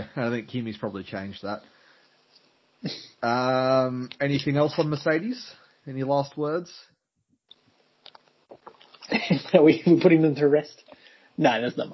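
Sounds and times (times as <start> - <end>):
speech: 0.1 - 1.8, 2.8 - 6.9, 9.3 - 11.9
wet mouth clicks: 8.1 - 9.0
person swallowing water: 8.5 - 9.0.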